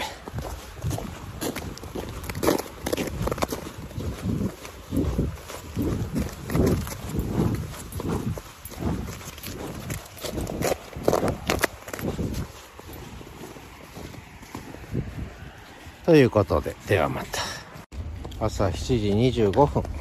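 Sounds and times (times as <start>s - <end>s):
footsteps crunching on snow and ice on a river embankment: 0.0s - 20.0s
light wind noise on the microphone: 0.0s - 20.0s
speech: 16.1s - 17.4s, 18.4s - 20.0s.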